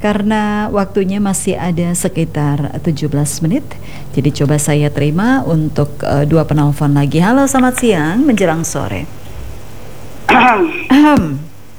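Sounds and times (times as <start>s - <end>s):
speech: 0.0s - 9.2s, 10.3s - 11.5s
caller coughing over a telephone line: 10.3s - 11.5s.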